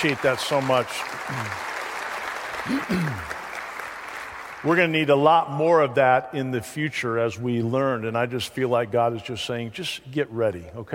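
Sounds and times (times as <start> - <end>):
speech: 0.0 - 1.7, 2.6 - 3.4, 4.6 - 10.9
audience applause for ushers, greeters and volunteers: 0.0 - 5.1.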